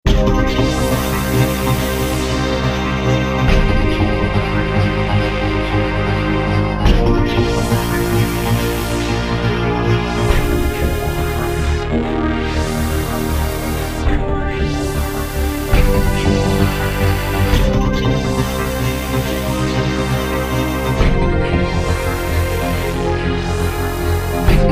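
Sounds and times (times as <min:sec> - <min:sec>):
V-Synth synthesizer loop: 0:00.1 - 0:24.6.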